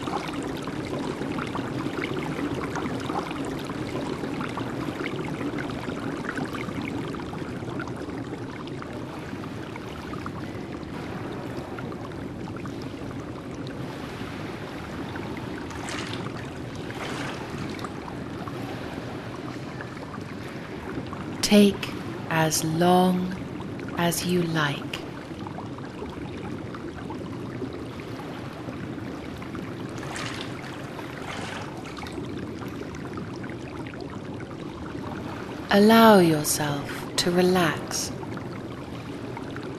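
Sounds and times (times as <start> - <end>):
brighter water splashes in a bath: 0.0 - 39.7
speech: 21.5 - 23.3, 24.0 - 24.9, 35.7 - 38.1.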